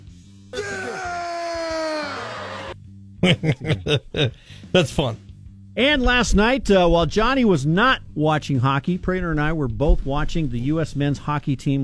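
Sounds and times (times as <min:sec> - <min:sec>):
person screaming in a played clip: 0:00.6 - 0:02.8
laughter: 0:03.2 - 0:04.4
speech: 0:03.2 - 0:05.2, 0:05.8 - 0:11.8.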